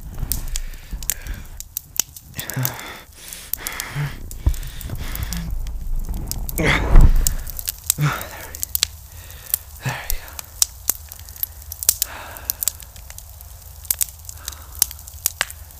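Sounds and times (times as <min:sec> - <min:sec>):
low steady rumble of campfire: 0:00.0 - 0:09.4
campfire crackling with pops and snaps: 0:00.0 - 0:15.7
soft breathy whooshes of campfire: 0:03.0 - 0:07.7.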